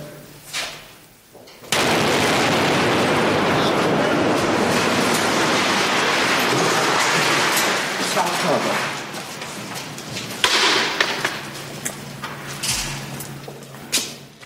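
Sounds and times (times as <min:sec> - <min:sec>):
massive explosion blowing up a building: 0:01.7 - 0:09.1
roaring rumble of collapsing building debris: 0:01.7 - 0:11.8.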